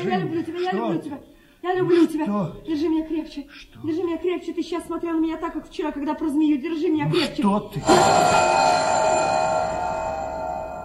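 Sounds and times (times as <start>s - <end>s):
speech: 0.0s - 9.5s
bell ringing with a bright tone full of overtones: 7.8s - 10.8s.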